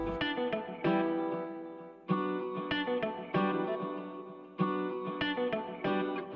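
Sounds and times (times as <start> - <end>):
layered Latin-style guitar loops with effects and reverb: 0.0 - 6.3.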